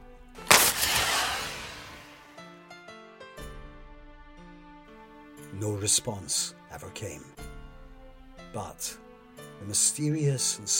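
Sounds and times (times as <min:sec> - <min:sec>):
flare gun firing from a ship: 0:00.5 - 0:02.4
speech: 0:05.6 - 0:07.4, 0:08.5 - 0:10.7.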